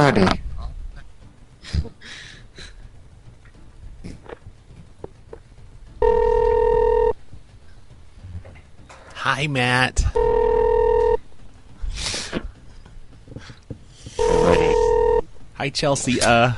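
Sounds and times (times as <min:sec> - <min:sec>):
speech: 0:00.0 - 0:00.4, 0:09.2 - 0:10.8, 0:15.6 - 0:16.5
telephone ring tone while a call is transferred: 0:06.0 - 0:07.2, 0:10.2 - 0:11.2, 0:14.2 - 0:15.2.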